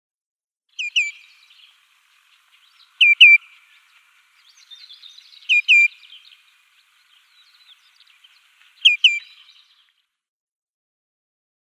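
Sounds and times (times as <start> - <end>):
Common greenshank nestling calling in doubled high peeps: 0.8 - 1.7, 2.8 - 3.4, 4.4 - 6.4, 7.5 - 9.4.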